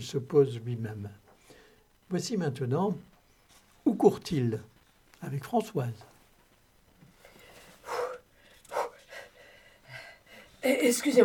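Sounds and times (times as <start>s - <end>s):
speech: 0.0s - 1.2s, 2.1s - 3.1s, 3.8s - 6.1s, 10.6s - 11.2s
loud gasping breaths: 7.2s - 10.6s
heavy breathless panting: 7.8s - 10.5s.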